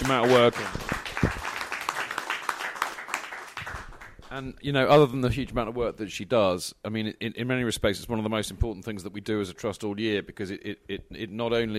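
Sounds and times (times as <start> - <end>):
crowd applauding: 0.0 - 4.3
speech: 0.1 - 0.9, 4.4 - 11.7.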